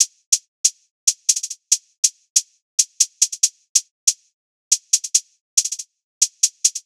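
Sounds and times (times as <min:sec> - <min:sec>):
trap drill drum beat: 0:00.0 - 0:06.8.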